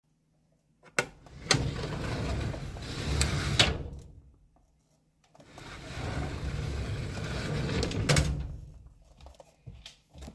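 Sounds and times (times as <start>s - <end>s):
Steelcase drawer: 1.3s - 4.0s, 5.4s - 8.6s.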